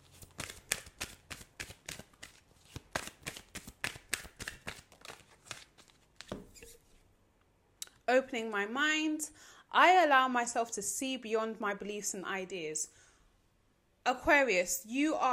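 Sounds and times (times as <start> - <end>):
healing mantra cards being shuffled: 0.0 - 7.0
speech: 8.1 - 13.0, 14.1 - 15.3.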